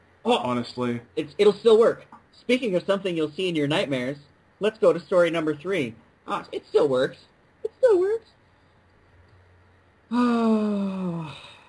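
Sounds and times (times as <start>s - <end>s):
speech: 0.3s - 8.4s, 10.1s - 11.5s
deep breath let out as a long voiced sigh: 10.1s - 11.6s.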